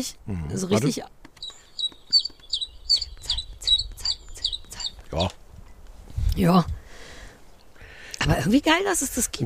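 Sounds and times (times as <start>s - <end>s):
speech: 0.0s - 1.2s, 5.1s - 5.4s, 6.4s - 6.8s, 8.2s - 9.4s
Common Chiffchaff singing high chipping notes played back from a bird-sound book: 1.3s - 5.8s.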